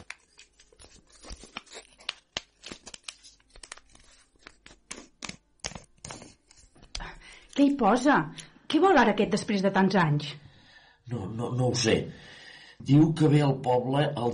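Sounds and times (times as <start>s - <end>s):
envelope paper tearing and letter crinkling: 0.0s - 6.9s
speech: 7.6s - 10.4s, 11.1s - 12.2s, 12.8s - 14.3s.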